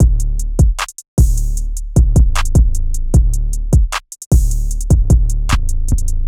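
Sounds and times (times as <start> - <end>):
drum pattern at 153 BPM: 0.0 - 5.9.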